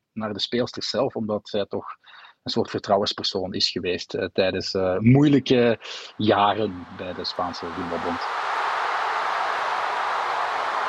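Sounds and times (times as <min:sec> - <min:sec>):
speech: 0:00.2 - 0:08.5
huge stadium crowd roaring at the World Cup final in Sydney: 0:06.2 - 0:10.8.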